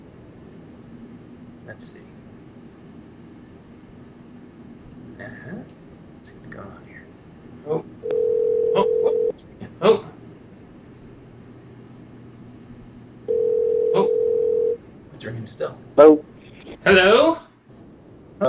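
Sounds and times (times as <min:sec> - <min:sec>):
speech: 0:01.7 - 0:02.2, 0:05.2 - 0:06.9, 0:07.6 - 0:07.9, 0:15.5 - 0:17.2
telephone ringback tones on a call line: 0:08.0 - 0:09.3, 0:13.3 - 0:14.8.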